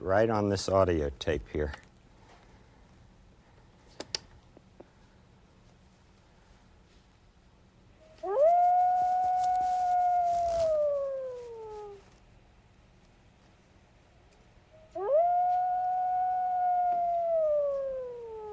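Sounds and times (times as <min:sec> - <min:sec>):
speech: 0:00.0 - 0:01.9
faint hiss: 0:00.0 - 0:18.5
wolves howling: 0:08.2 - 0:12.0, 0:14.9 - 0:18.5.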